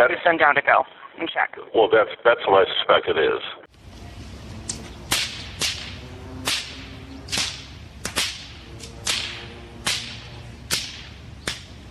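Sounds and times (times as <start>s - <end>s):
speech: 0.0s - 3.7s
faint outdoor murmur: 0.0s - 11.9s
bullwhip cracks: 4.7s - 11.9s.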